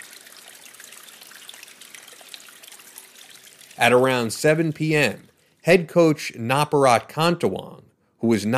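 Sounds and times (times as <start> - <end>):
drinkable water trickling off rocks in a cave: 0.0 - 5.6
speech: 3.8 - 8.5.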